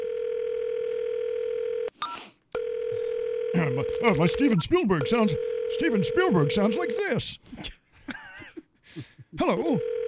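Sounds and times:
steady telephone tone on a call to a coffee shop: 0.0s - 1.9s, 2.6s - 4.2s, 5.0s - 7.2s, 9.8s - 10.0s
speech: 3.6s - 7.8s, 9.0s - 9.9s.

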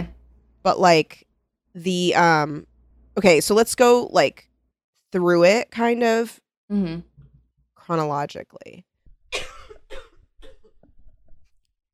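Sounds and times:
speech: 0.6s - 4.5s, 5.1s - 7.1s, 7.9s - 10.0s
person coughing into a microphone: 9.4s - 10.7s.

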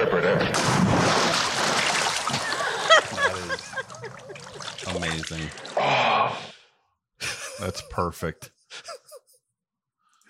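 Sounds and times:
loud water splash sound effect: 0.5s - 6.0s
laughter: 2.3s - 5.6s, 7.2s - 9.4s
speech: 7.6s - 8.9s.

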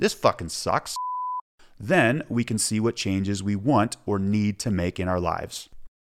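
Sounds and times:
speech: 0.0s - 1.1s, 1.8s - 5.7s
steady electronic censor bleep with a single pure tone: 1.0s - 1.4s.

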